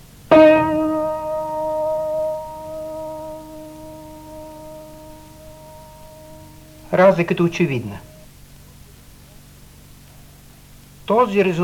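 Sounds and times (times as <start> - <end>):
single piano tone from the musical scale ringing: 0.0 - 8.2
speech: 6.9 - 8.1, 11.1 - 11.6.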